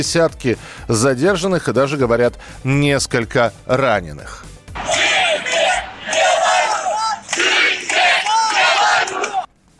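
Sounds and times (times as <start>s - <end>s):
speech: 0.0s - 5.0s
large protest crowd chanting a slogan in unison: 4.8s - 9.5s.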